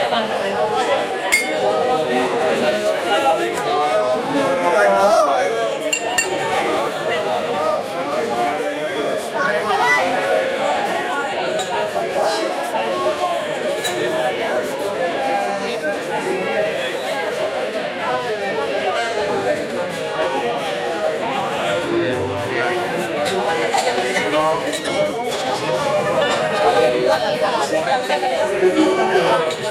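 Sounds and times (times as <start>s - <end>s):
loud bar ambience: 0.0s - 29.7s.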